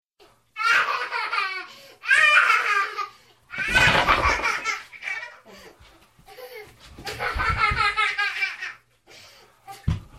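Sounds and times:
little girl laughing as a ringtone: 0.6s - 5.6s, 6.3s - 8.9s.

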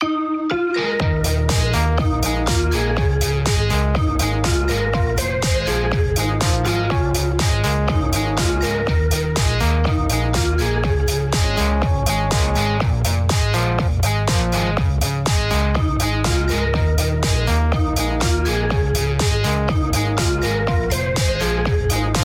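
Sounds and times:
beat style ringtone: 0.0s - 22.2s.

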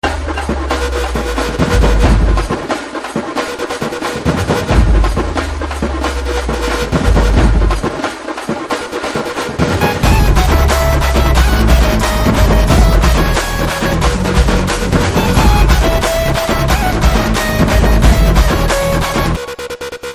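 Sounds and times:
drum beats ringtone: 0.0s - 20.1s.

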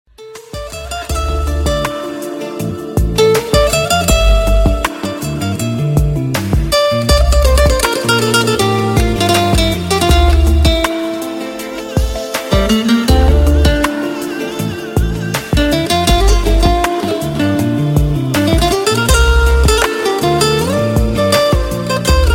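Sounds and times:
Spanish guitar ringtone: 0.2s - 22.3s.

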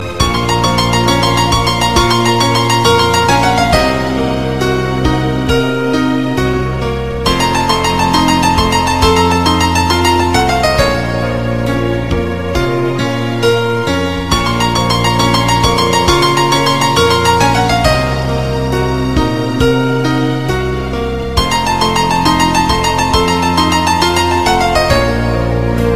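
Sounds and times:
remix piano solo ringtone: 0.0s - 25.9s.

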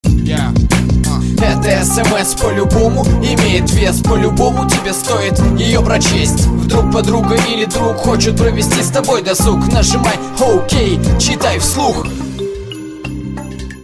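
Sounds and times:
Russian SMS rap ringtone: 0.1s - 13.6s.

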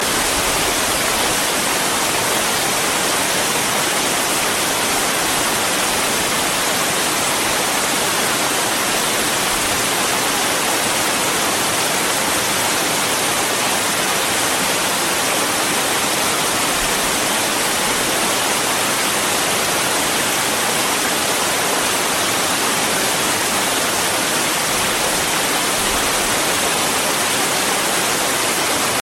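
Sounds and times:
flowing water ringtone sound effect: 0.0s - 29.0s.

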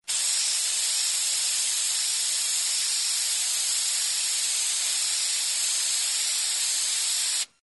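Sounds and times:
spray paint ringtone: 0.1s - 7.5s.

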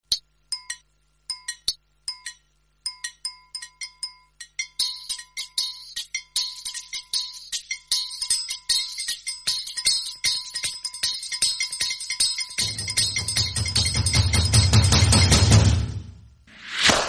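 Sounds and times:
background music tone ringtone: 1.4s - 15.0s.

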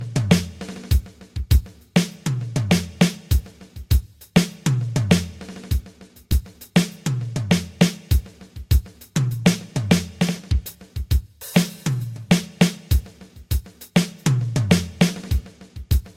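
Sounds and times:
rock drums: 0.0s - 16.1s.

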